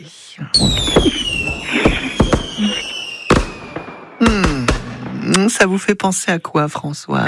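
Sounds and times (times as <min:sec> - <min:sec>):
speech: 0:00.0 - 0:01.8, 0:05.5 - 0:07.2
descending firework whistles: 0:00.6 - 0:05.1
fireworks exploding: 0:00.6 - 0:05.8.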